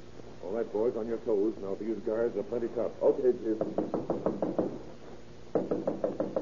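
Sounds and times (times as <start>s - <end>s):
speech: 0.5s - 4.2s
police officers knocking firmly on a rooming house door: 3.6s - 4.8s, 5.5s - 6.3s.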